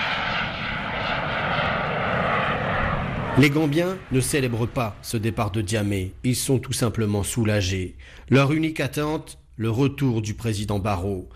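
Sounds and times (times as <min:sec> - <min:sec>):
jet aircraft engine roaring while taking off at night: 0:00.0 - 0:08.2
speech: 0:03.4 - 0:11.3.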